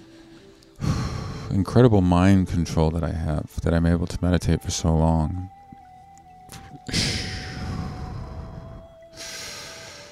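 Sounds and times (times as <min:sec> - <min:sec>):
heavy breathing into a microphone: 0:00.0 - 0:01.7, 0:06.6 - 0:10.0
speech: 0:01.5 - 0:05.6.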